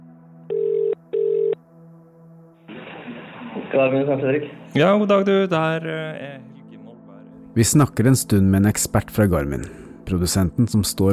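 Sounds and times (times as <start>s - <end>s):
electronic telephone ring tones: 0.5s - 1.6s
speech: 3.7s - 6.5s, 7.6s - 11.1s.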